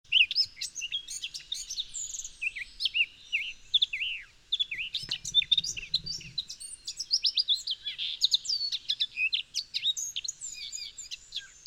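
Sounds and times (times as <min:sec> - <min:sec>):
Eurasian blackcap Sylvia atricapilla song: 0:00.1 - 0:11.6.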